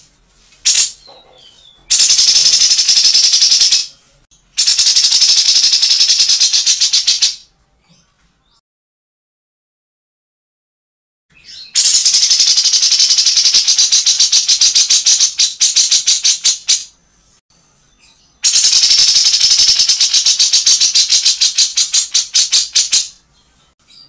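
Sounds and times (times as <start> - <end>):
grey-cheeked bulbul chattering in harsh rattles: 0.7 - 3.8, 4.6 - 7.3, 11.8 - 16.8, 18.5 - 23.0.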